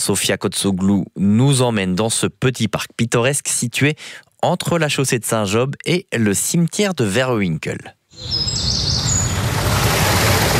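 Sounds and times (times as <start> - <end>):
speech: 0.0 - 8.8
thin high bird chirps trilling: 8.1 - 9.5.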